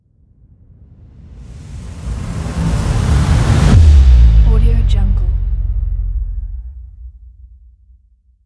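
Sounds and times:
cinematic bass drop transition: 2.3s - 7.7s.

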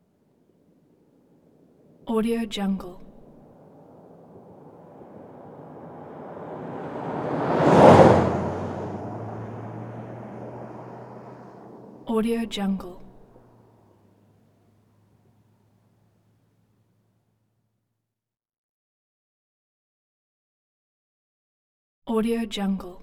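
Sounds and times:
compact car passing slowly: 0.0s - 17.6s.

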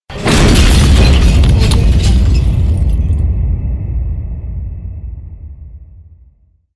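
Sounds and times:
artillery fire: 0.2s - 3.7s.

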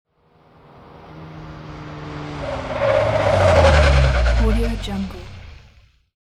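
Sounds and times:
taxicab screeching to a halt: 0.2s - 6.0s.

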